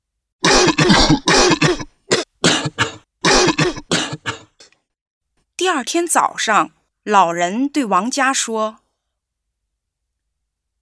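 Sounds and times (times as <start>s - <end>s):
old man coughing heavily: 0.4s - 4.7s
speech: 0.9s - 1.4s, 5.8s - 8.8s.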